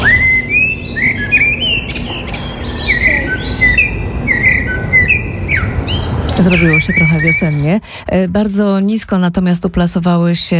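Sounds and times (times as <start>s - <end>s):
Eurasian blackbird singing fluting warbled phrases: 0.0s - 7.8s
low outdoor rumble: 0.0s - 10.5s
speech: 6.4s - 10.5s.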